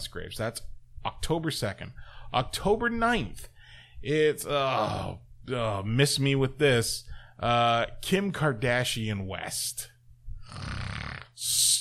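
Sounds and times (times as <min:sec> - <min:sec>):
speech: 0:00.0 - 0:09.9, 0:10.5 - 0:11.7
person doing an exaggerated mock snore: 0:10.4 - 0:11.7.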